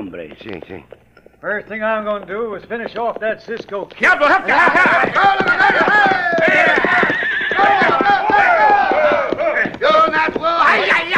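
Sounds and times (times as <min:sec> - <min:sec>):
hooves pounding in a fast gallop: 0:00.0 - 0:11.1
speech: 0:00.1 - 0:08.5
riders shouting: 0:04.0 - 0:11.1
several horses whinnying loudly: 0:04.0 - 0:11.1.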